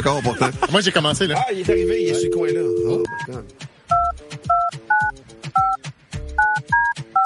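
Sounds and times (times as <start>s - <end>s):
speech: 0.0s - 3.7s
touch-tone DTMF keypad beeps dialing a phone number: 1.7s - 3.3s, 3.9s - 5.8s, 6.4s - 7.2s.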